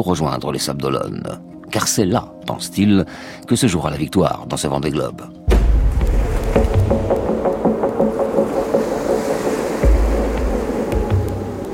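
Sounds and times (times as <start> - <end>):
speech: 0.0 - 5.8
racing sailboat bow hull slamming into swells in the Indian Ocean: 5.5 - 7.4, 8.5 - 11.7
constant roar of surf and wind in the Indian Ocean: 5.8 - 11.7.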